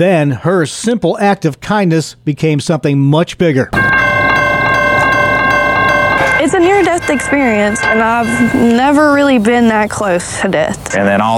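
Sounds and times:
speech: 0.0 - 3.9, 6.4 - 11.3
train horn blaring: 3.8 - 10.2.

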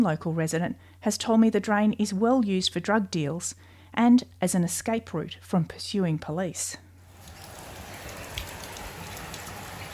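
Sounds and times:
speech: 0.0 - 6.8
heavy rain pouring in St Kilda: 7.1 - 9.9.

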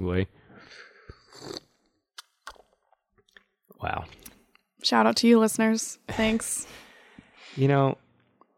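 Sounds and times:
speech: 0.0 - 0.8, 3.8 - 4.2, 4.8 - 6.8, 7.6 - 8.0
two people slurping hot tea: 0.6 - 2.7
small mouth sounds: 1.0 - 2.7.

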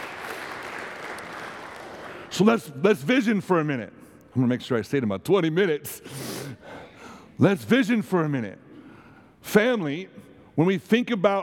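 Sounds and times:
crowd applauding: 0.0 - 2.4
speech: 2.4 - 6.3, 7.4 - 8.6, 9.4 - 11.4.

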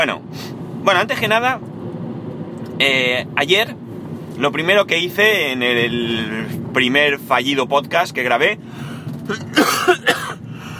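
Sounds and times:
speech: 0.0 - 1.7, 2.8 - 3.8, 4.4 - 10.4
raspy coughs from a person with a lingering cough in Alicante: 9.3 - 10.7.

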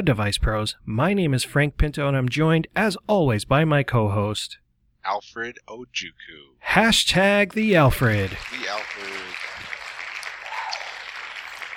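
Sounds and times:
speech: 0.0 - 9.4
crowd applause sound effect with clapping and cheering: 7.7 - 11.7.

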